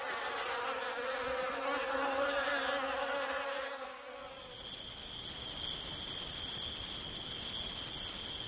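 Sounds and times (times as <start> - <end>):
fly buzzing in a kitchen: 0.1 - 8.4
high-pitched insect trill: 4.2 - 8.4.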